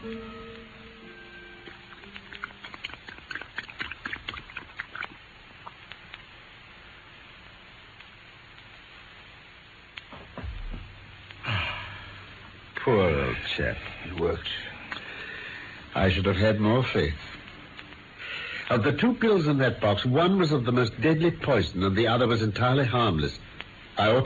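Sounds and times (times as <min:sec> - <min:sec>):
dog lapping milk: 0:01.7 - 0:05.8
speech: 0:12.9 - 0:14.7, 0:16.0 - 0:17.3, 0:18.7 - 0:23.4, 0:24.0 - 0:24.2.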